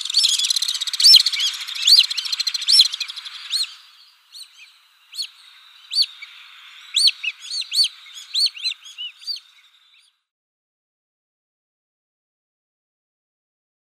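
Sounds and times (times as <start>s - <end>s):
Alpine Swift calling: 0.0s - 10.1s
faint steady hiss: 0.0s - 10.2s.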